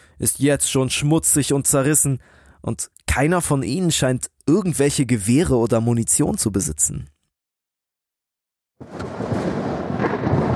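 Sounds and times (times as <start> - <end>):
speech: 0.2 - 7.2
deep continuous rumble of thunder in a thunderstorm: 8.8 - 10.5.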